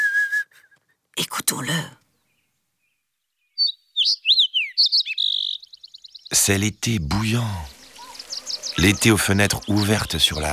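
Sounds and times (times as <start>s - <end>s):
speech: 1.2s - 2.0s, 6.3s - 7.8s, 8.8s - 10.5s
sparrow chirping: 2.2s - 10.5s.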